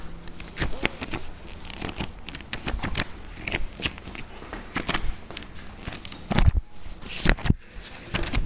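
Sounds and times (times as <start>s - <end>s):
pages turning: 0.3s - 8.4s.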